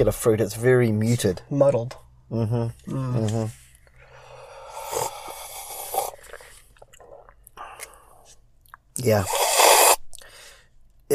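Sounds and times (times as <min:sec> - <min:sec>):
speech: 0:00.0 - 0:03.6, 0:09.0 - 0:09.4
slurping coffee: 0:04.4 - 0:07.4, 0:09.1 - 0:10.1.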